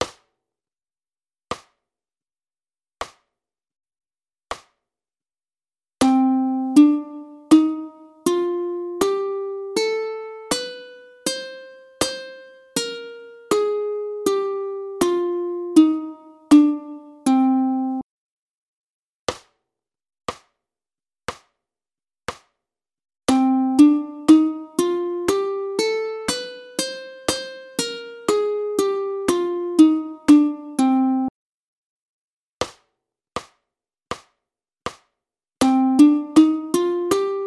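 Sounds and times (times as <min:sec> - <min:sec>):
ukulele playing scales: 0:06.0 - 0:18.0, 0:23.3 - 0:31.3, 0:35.6 - 0:37.4.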